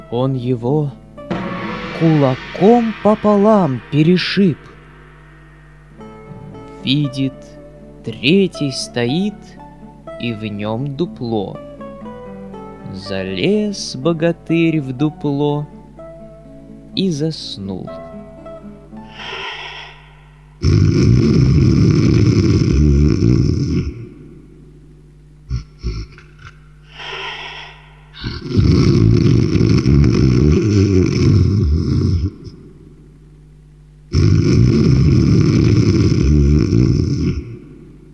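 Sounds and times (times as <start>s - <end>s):
speech: 0.1s - 1.0s, 2.0s - 4.7s, 6.8s - 9.6s, 10.2s - 11.7s, 12.9s - 15.7s, 17.0s - 18.0s, 20.6s - 21.4s
breathing: 19.0s - 20.6s, 26.8s - 28.2s
loud rolling snoring: 20.6s - 24.0s, 27.0s - 32.3s, 34.1s - 37.6s.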